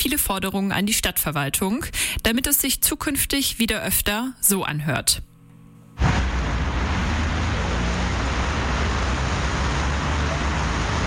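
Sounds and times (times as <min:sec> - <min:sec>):
speech: 0:00.0 - 0:05.3
deep engine rumble: 0:06.0 - 0:11.0
flowing traffic on a main road: 0:06.0 - 0:11.0
tire and road noise: 0:06.0 - 0:11.0.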